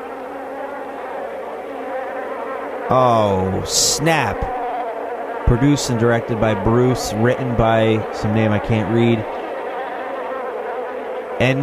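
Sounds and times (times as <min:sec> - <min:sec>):
bee buzzing on a seat at a football game: 0:00.0 - 0:11.6
speech: 0:02.9 - 0:04.6, 0:05.5 - 0:09.4, 0:11.4 - 0:11.6.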